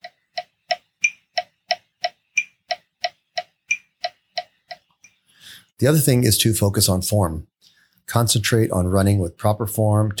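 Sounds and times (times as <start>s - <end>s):
metronome ticking at 180 beats per minute for running cadence training: 0.0s - 5.2s
speech: 5.8s - 7.5s, 8.1s - 10.1s.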